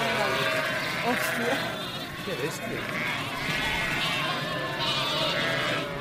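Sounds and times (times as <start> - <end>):
lambs bleating for their mothers during a flock drive: 0.0 - 5.9
speech: 1.1 - 3.7.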